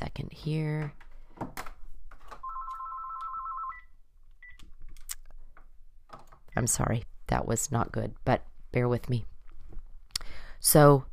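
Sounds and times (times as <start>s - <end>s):
speech: 0.2s - 1.0s, 6.6s - 9.3s, 10.6s - 11.1s
telephone ringing with a steady electronic trill: 2.4s - 4.6s.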